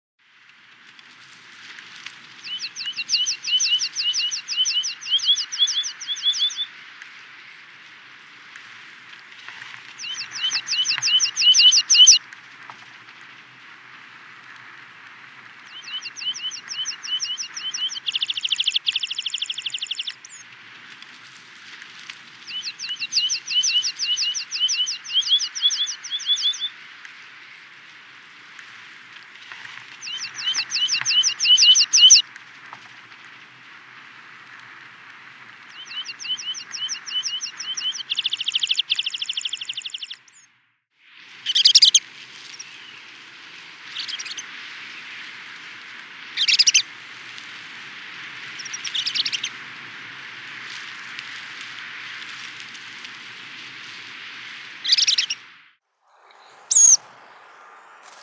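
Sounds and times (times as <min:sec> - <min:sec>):
red-throated pipit calling: 0:02.4 - 0:06.7, 0:10.0 - 0:12.2, 0:15.8 - 0:20.4, 0:22.5 - 0:26.8, 0:30.0 - 0:32.2, 0:35.8 - 0:40.2, 0:41.6 - 0:42.0, 0:46.4 - 0:46.8, 0:54.9 - 0:55.4, 0:56.1 - 0:58.2.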